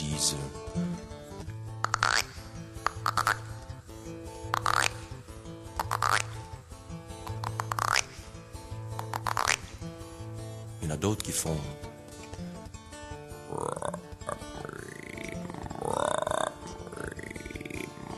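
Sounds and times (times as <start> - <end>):
speech: 0.2 - 0.9, 10.9 - 11.8
frogs croaking: 1.7 - 10.2, 13.4 - 18.1.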